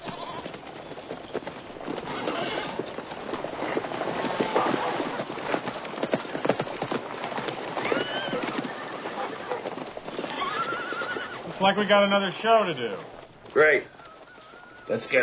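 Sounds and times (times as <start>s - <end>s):
faint birdsong: 0.0s - 2.7s, 9.3s - 15.2s
clatter of horse hooves clip-clopping: 0.0s - 15.2s
horses whinnying and neighing: 0.0s - 15.2s
speech: 11.6s - 14.0s, 14.9s - 15.2s.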